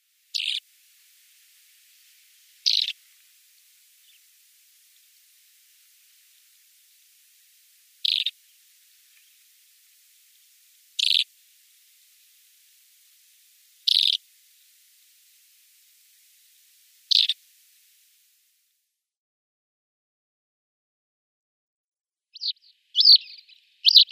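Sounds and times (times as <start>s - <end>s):
Lesser Short-toed Lark flight calls: 0.3s - 0.6s, 2.6s - 3.0s, 8.0s - 8.4s, 11.0s - 11.3s, 13.8s - 14.2s, 17.1s - 17.4s, 22.4s - 24.0s.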